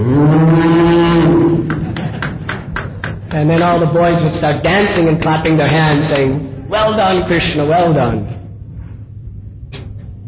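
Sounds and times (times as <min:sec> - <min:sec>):
human voice imitating a cow mooing: 0:00.0 - 0:01.7
speech: 0:03.4 - 0:08.4.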